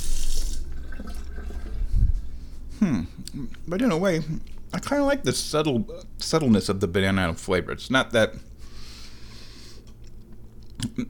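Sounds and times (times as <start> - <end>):
water running from a tap into a sink while washing hands: 0.0 - 1.8
speech: 2.8 - 8.5.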